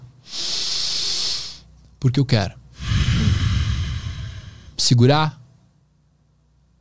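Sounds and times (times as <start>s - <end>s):
deliberate slow breathing in and out: 0.2s - 1.7s, 2.8s - 4.8s
speech: 2.0s - 2.6s, 4.9s - 5.4s.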